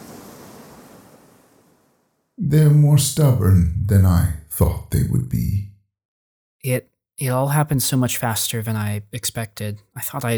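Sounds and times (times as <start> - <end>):
ocean waves washing onto a rocky shore: 0.0 - 1.9
speech: 2.5 - 5.7, 6.6 - 10.3.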